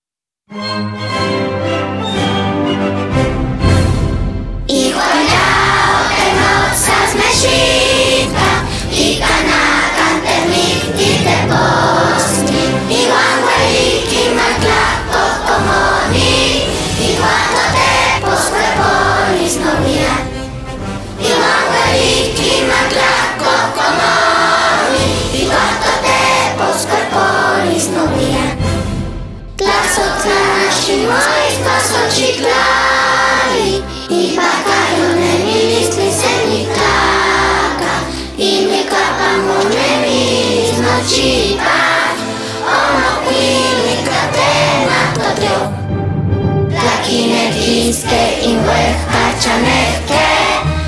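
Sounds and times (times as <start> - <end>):
national anthem in Hahuatl: 0.6 - 50.8.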